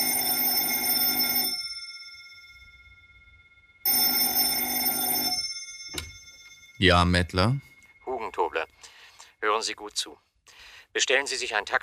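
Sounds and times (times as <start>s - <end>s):
telephone bell ringing: 0.0s - 8.6s
speech: 6.8s - 7.7s, 9.6s - 10.3s, 10.9s - 11.8s.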